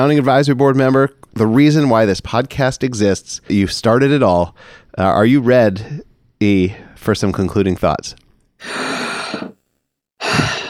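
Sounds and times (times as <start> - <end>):
speech: 0.0 - 9.0
loud awkward deep breath: 4.6 - 5.0, 8.6 - 9.6, 10.2 - 10.6.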